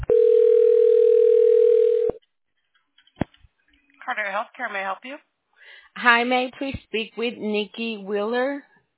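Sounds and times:
telephone line tone while a call is transferred to a healthcare switchboard: 0:00.0 - 0:02.2
speech: 0:04.2 - 0:05.3, 0:06.0 - 0:08.7.

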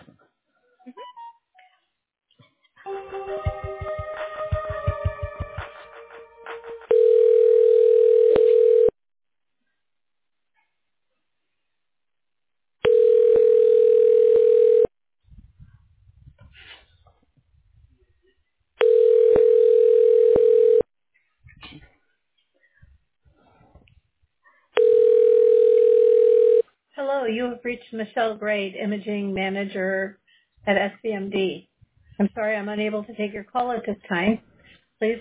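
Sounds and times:
long steady telephone line tones while a call is transferred: 0:06.9 - 0:09.0, 0:12.8 - 0:14.9, 0:18.8 - 0:20.9, 0:24.8 - 0:26.6
speech: 0:27.6 - 0:35.1.

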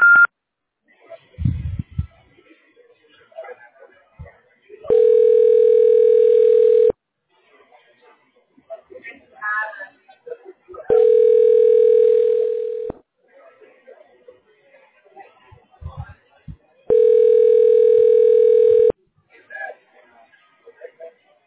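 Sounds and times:
faint voices: 0:00.8 - 0:21.4
telephone tone: 0:04.9 - 0:06.9, 0:10.9 - 0:12.9, 0:16.9 - 0:18.9.

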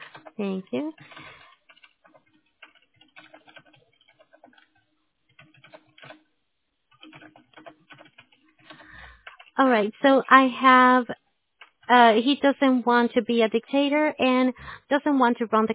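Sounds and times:
person typing on a computer keyboard: 0:00.0 - 0:06.3, 0:06.9 - 0:10.9, 0:11.6 - 0:12.2
speech: 0:00.4 - 0:01.4, 0:09.6 - 0:11.2, 0:11.9 - 0:15.7.

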